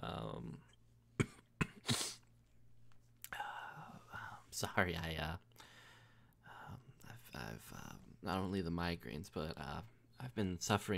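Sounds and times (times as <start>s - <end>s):
speech: 0.0s - 0.8s, 4.6s - 5.5s, 7.4s - 10.9s
short coughs: 1.2s - 2.2s.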